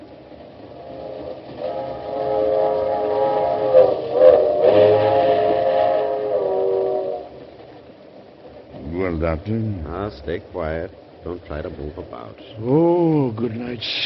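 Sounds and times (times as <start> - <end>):
steady rumble of a moving train: 0.0 - 14.0
train whistle in long sustained harmonic blasts: 0.6 - 7.6
speech: 9.2 - 14.0.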